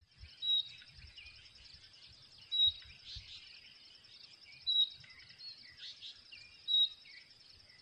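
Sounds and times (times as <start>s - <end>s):
soft bird chirps: 0.0s - 7.8s
common nightingale Luscinia megarhynchos sharp high whistles: 0.4s - 1.4s, 2.5s - 3.4s, 4.5s - 7.8s.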